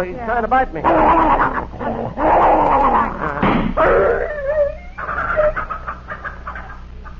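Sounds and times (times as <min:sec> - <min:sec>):
speech: 0:00.0 - 0:02.8
dog yelping and whimpering in pain: 0:00.8 - 0:05.8.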